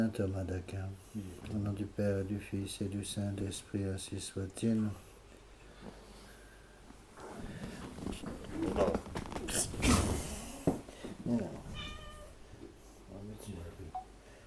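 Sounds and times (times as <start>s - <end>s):
speech: 0.0s - 5.1s
faint rustling: 5.0s - 13.6s
cat meowing: 11.7s - 12.4s.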